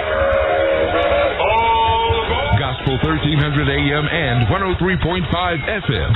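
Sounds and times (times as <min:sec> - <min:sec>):
train whistle sound effect in a radio station jingle: 0:00.0 - 0:02.1
rumbling, chugging low end of a loud locomotive: 0:00.0 - 0:06.1
speech: 0:02.8 - 0:06.1.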